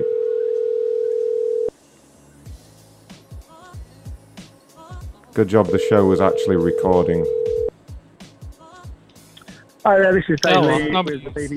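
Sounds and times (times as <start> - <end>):
telephone tone from an unanswered call: 0.0 - 1.8, 5.6 - 7.7
speech: 5.4 - 7.6, 9.8 - 11.5.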